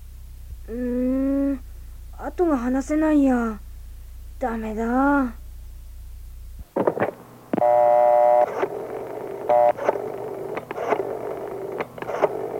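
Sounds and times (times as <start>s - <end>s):
low hum: 0.0s - 12.5s
speech: 0.7s - 1.0s, 2.4s - 3.6s, 4.4s - 5.4s
telephone dialing tones: 7.6s - 12.5s
scattered clicks: 8.4s - 12.5s.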